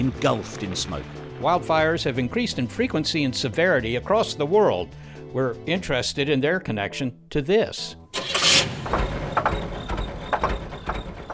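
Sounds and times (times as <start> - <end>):
speech: 0.0 - 8.0
car engine running: 8.2 - 11.3
mechanical knocks: 8.2 - 11.3.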